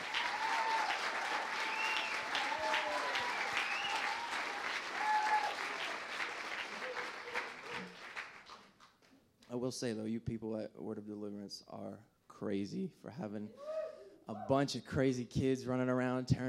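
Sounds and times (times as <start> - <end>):
faint whoops in the audience: 0.0 - 6.0, 13.5 - 14.2
large audience standing and clapping for a woman: 0.0 - 9.2
speech: 9.6 - 13.7, 14.3 - 16.4.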